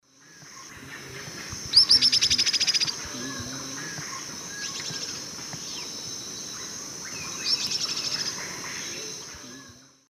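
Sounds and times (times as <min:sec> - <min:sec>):
Ornithion inerme calling in South American eastern lowlands: 0:00.2 - 0:09.8.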